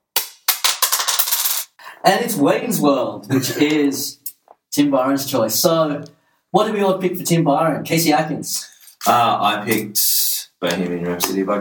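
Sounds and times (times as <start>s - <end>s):
dice rolled on a hard surface: 0.6s - 1.7s
speech: 2.0s - 4.2s, 4.8s - 11.5s
laughter: 3.2s - 4.0s.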